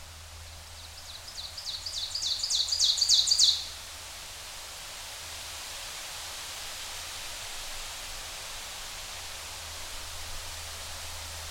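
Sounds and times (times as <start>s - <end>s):
steady background hiss: 0.0s - 11.4s
ovenbird singing: 1.0s - 3.7s.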